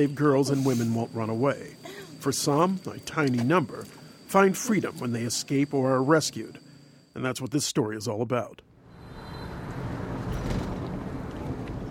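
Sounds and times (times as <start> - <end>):
speech: 0.0 - 6.6, 7.2 - 8.7
road noise inside a moving car: 8.9 - 11.8
vehicles passing in city traffic: 9.0 - 11.8
traffic rumble from inside a moving car in chaotic city traffic: 9.1 - 11.8.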